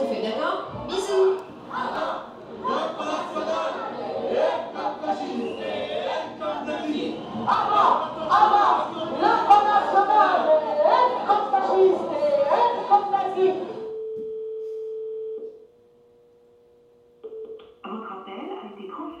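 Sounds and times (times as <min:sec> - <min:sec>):
dense crowd murmuring and chattering: 0:00.1 - 0:13.9.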